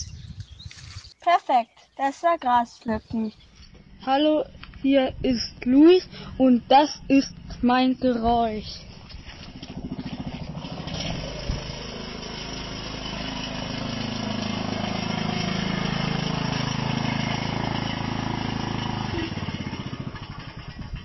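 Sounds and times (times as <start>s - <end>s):
speech: 1.3s - 8.9s
ride-on lawn mower engine running: 3.4s - 21.0s.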